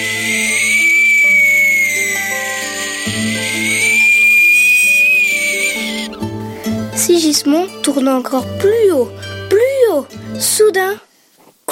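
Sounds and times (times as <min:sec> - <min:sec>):
high airy whistling tone: 0:00.0 - 0:06.2
speech: 0:07.2 - 0:09.3, 0:09.9 - 0:11.1.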